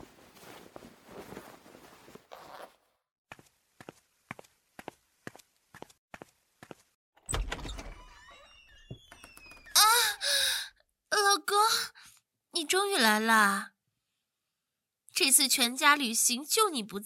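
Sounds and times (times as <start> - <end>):
fabric rustling: 0.0 - 2.8
door creaking open with a squeak: 7.2 - 10.3
speech: 12.7 - 13.7, 15.2 - 17.0.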